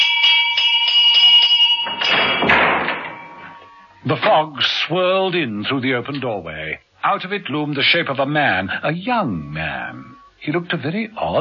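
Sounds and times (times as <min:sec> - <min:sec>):
front doorbell ringing: 0:00.0 - 0:04.1
speech: 0:04.0 - 0:11.3.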